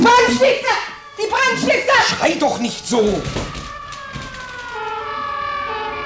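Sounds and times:
emergency vehicle sirens wailing: 0.0s - 6.0s
speech: 1.6s - 3.6s.

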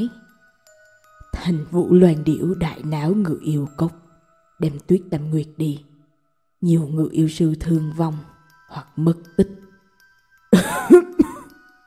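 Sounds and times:
speech: 0.0s - 0.2s, 1.4s - 4.0s, 4.6s - 5.9s, 6.6s - 9.6s, 10.5s - 11.1s
narrator imitating an old man coughing: 10.6s - 11.5s.

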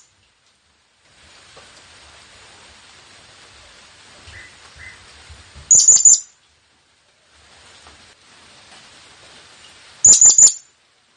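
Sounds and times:
quiet hiss: 0.0s - 11.1s
blue-crowned hanging parrot shrill high-pitched chirps as a lure call: 5.7s - 6.3s, 10.0s - 10.7s.

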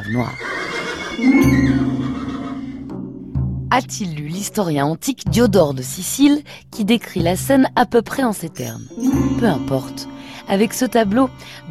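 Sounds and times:
horses neighing in terror as they are dragged toward a funeral pyre: 0.0s - 3.0s
speech: 0.1s - 0.5s, 1.2s - 2.1s, 3.7s - 11.6s.

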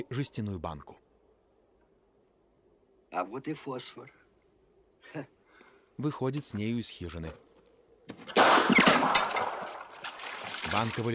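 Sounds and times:
speech: 0.0s - 1.0s, 3.1s - 4.2s, 5.1s - 5.4s, 6.0s - 7.4s, 10.7s - 11.1s
gunshots fired across a boggy moor: 8.2s - 10.6s.

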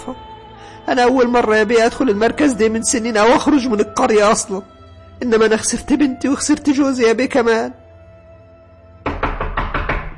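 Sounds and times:
speech: 0.9s - 7.8s
knuckles knocking on a door: 9.0s - 10.1s.

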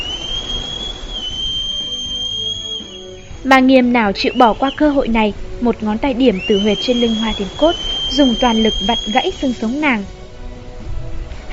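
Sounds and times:
whistle blown hard during a fight: 0.0s - 5.3s, 6.0s - 10.1s
speech: 3.4s - 10.2s.

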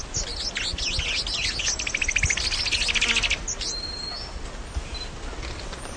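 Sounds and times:
Tepui brush finch singing high chattering and twittering notes: 0.0s - 5.2s.

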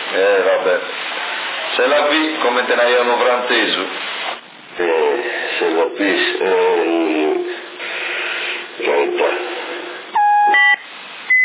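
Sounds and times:
band-limited talk on a CB radio channel: 0.0s - 1.0s, 1.6s - 7.8s, 8.7s - 10.0s
speech: 0.1s - 1.0s, 1.8s - 4.1s, 4.8s - 7.5s, 8.8s - 9.5s
electronic beeps on a CB radio channel: 10.2s - 11.4s.

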